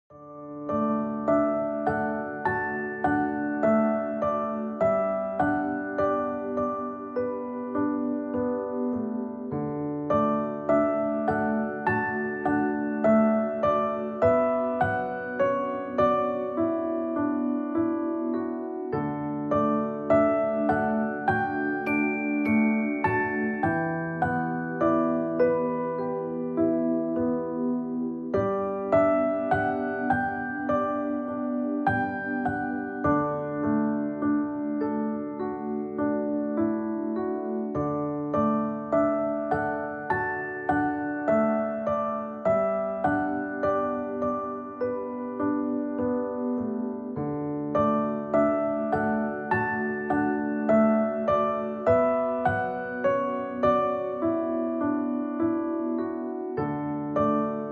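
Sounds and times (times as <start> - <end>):
relaxing piano music: 0.1 - 57.7.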